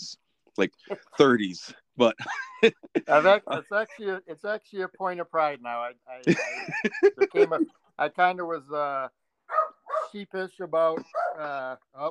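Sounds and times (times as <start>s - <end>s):
speech: 0.6s - 12.1s
laughter: 2.0s - 4.0s, 6.2s - 7.7s
dog barking and yipping: 9.5s - 10.2s, 11.1s - 11.4s.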